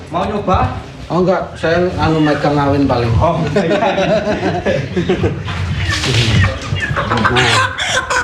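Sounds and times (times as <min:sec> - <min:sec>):
speech: 0:00.1 - 0:08.1
Javanese chicken ayam Jawa clucking while held before slaughter: 0:01.8 - 0:02.8, 0:04.8 - 0:08.2
laughter: 0:03.2 - 0:08.2.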